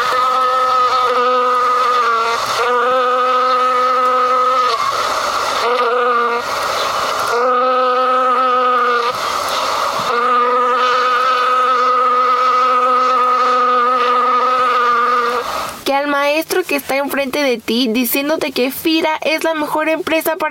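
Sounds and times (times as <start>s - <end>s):
fly buzzing: 0.0s - 15.9s
speech: 16.4s - 20.5s.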